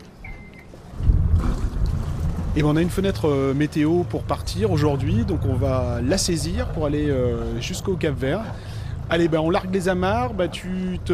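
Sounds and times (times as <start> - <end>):
sailboat engine with deep steady throbbing rumble: 0.0 - 11.1
brief high beep of a sailboat engine starting: 0.2 - 0.7
speech: 2.6 - 11.1.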